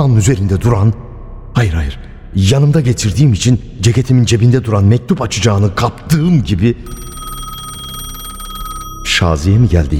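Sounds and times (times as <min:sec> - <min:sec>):
speech: 0:00.0 - 0:01.0, 0:01.6 - 0:07.1, 0:09.2 - 0:09.9
old-fashioned telephone bell ringing: 0:06.8 - 0:09.6.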